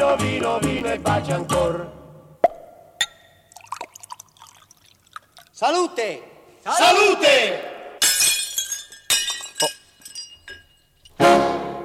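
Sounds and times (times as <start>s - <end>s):
speech: 0.1s - 2.0s, 5.6s - 7.8s
drinking glasses falling, crashing and shattering: 8.0s - 11.2s
scattered tinkling shards of drinking glass: 8.0s - 11.2s.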